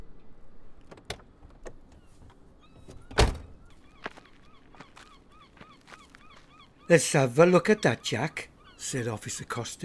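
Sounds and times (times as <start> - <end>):
car door unlatched and opened: 0.8 - 3.7
speech: 6.9 - 9.8.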